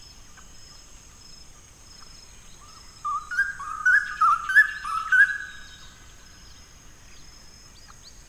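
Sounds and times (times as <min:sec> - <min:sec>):
straw-headed bulbul singing warbled liquid whistles: 0:03.1 - 0:05.9.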